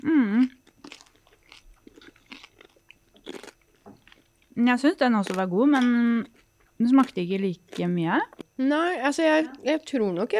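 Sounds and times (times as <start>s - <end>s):
biting and chewing roast pork rib: 0.4s - 8.6s
speech: 4.6s - 10.3s.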